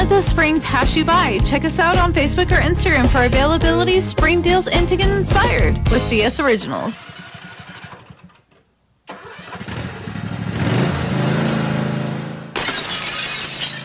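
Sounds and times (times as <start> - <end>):
speech: 0.1 - 7.2
small lawnmower engine starting and revving: 6.2 - 12.4
car side window glass breaking: 12.6 - 13.8.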